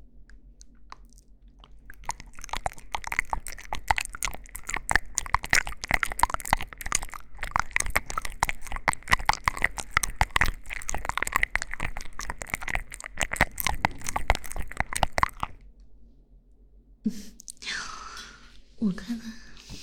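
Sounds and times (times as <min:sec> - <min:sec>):
crunchy food being bitten and chewed: 0:00.2 - 0:15.7
speech: 0:18.9 - 0:19.4.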